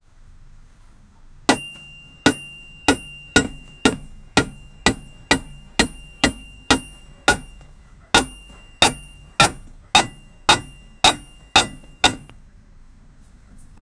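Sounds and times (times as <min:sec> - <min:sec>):
metal scraping: 0:01.5 - 0:12.3
metal clanging: 0:01.5 - 0:12.4.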